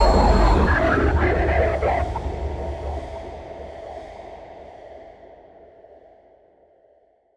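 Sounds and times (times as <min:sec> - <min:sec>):
eerie ambience: 0:00.0 - 0:04.4.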